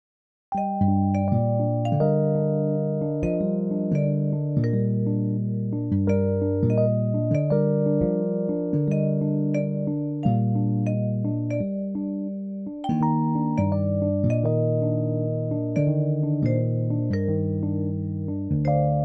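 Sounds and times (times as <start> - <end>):
electric piano: 0.5 - 19.0.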